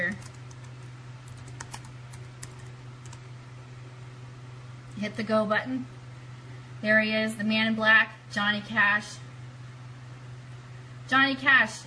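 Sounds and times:
faint typing on a computer keyboard: 0.0 - 3.2
steady low hum: 0.0 - 11.8
speech: 5.0 - 6.0, 6.8 - 9.2, 11.1 - 11.8.

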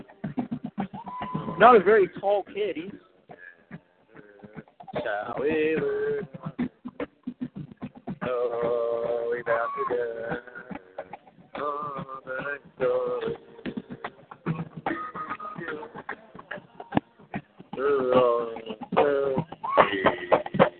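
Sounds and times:
speech: 1.6 - 3.0, 5.0 - 6.4, 8.3 - 10.4
person singing in the background: 2.8 - 20.7.

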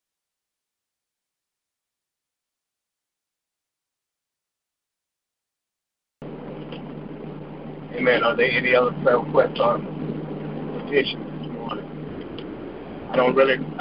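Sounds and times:
car road noise in rainy rush hour traffic in Richmond: 6.2 - 13.7
low car engine hum: 6.2 - 13.7
speech: 8.0 - 10.0, 10.9 - 11.8, 13.1 - 13.7.

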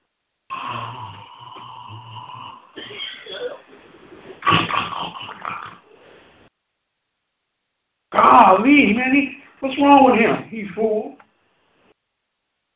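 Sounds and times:
person imitating snoring: 0.5 - 3.6, 4.4 - 6.0
speech: 8.5 - 11.2.

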